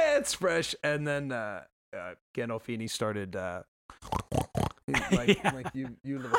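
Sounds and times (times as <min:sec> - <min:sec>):
speech: 0:00.2 - 0:06.3
voice imitating pig snorts: 0:03.9 - 0:04.8
laughter: 0:04.9 - 0:06.3.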